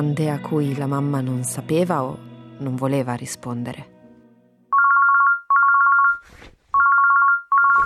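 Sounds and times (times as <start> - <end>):
speech: 0.0 - 3.9
telephone ringing with a warbling electronic trill: 4.7 - 6.2, 6.8 - 7.8
brief rustle: 6.1 - 6.7.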